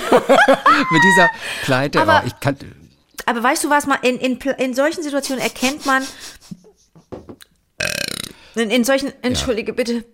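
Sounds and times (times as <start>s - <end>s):
laughter: 0.0s - 2.3s
speech: 0.1s - 6.6s, 8.6s - 10.1s
loud drawn-out rattling burp: 7.8s - 8.5s.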